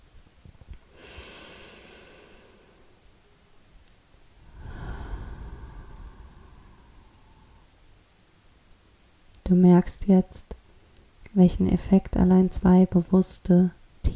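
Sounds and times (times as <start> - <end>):
slow deep breathing in and out: 0.9 - 3.0, 4.4 - 7.9
speech: 9.5 - 10.6, 11.4 - 14.1.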